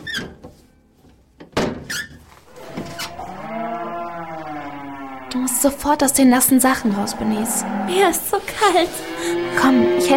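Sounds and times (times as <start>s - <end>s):
squeaky creaks: 1.9s - 8.2s
several cows mooing loudly: 2.5s - 10.1s
speech: 5.6s - 10.1s.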